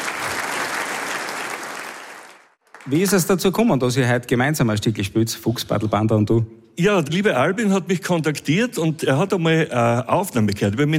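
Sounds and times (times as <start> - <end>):
audience applause at a live music performance: 0.0 - 3.4
speech: 2.8 - 10.9.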